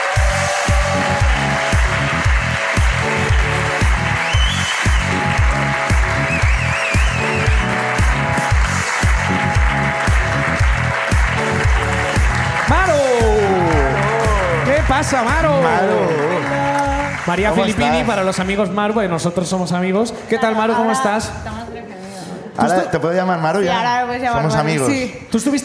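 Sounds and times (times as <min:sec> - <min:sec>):
rhythmic music with a strong regular bass beat: 0:00.0 - 0:15.6
audience clapping: 0:00.0 - 0:18.8
speech: 0:15.1 - 0:16.3, 0:17.3 - 0:21.6, 0:22.6 - 0:25.6.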